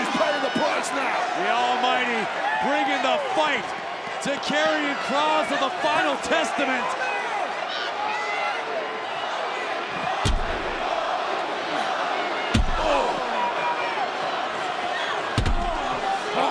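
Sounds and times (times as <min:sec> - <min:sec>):
arena crowd roaring: 0:00.0 - 0:16.4
speech: 0:03.2 - 0:07.0
arm slamming into a metal ring post: 0:15.4 - 0:15.9.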